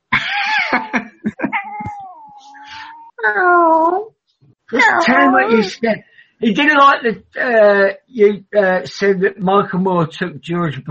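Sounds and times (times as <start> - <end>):
laughter: 0.1 - 2.0, 4.8 - 6.7
cat meowing: 1.5 - 3.9, 4.8 - 5.8
speech: 3.2 - 3.9, 4.8 - 10.8.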